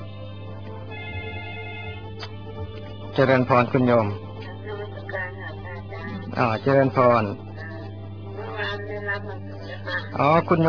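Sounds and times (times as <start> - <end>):
telephone ringtone with a sustained electronic tone: 0.9 - 2.1
speech: 3.2 - 4.3, 6.4 - 7.5, 9.8 - 10.6.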